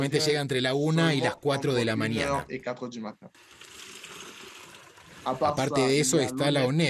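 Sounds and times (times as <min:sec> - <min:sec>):
speech: 0:00.0 - 0:03.7, 0:05.2 - 0:06.8
water pouring from a tap into a container: 0:03.3 - 0:05.7.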